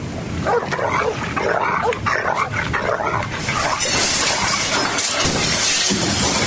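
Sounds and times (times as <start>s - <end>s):
dogs snarling and barking while attacking and biting: 0.3s - 6.4s
something shattering: 3.3s - 6.4s.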